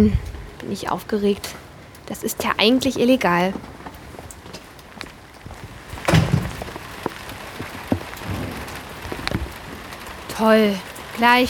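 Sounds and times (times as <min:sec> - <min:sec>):
speech: 0:00.0 - 0:03.8, 0:10.4 - 0:11.4
steady rain pattering on a hard surface outdoors: 0:00.2 - 0:11.4.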